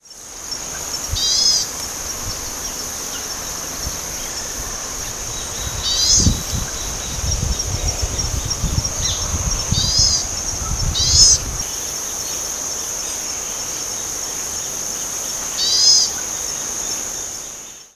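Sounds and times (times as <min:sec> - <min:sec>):
Polioptila dumicola calling: 0:00.6 - 0:11.9, 0:15.5 - 0:17.0.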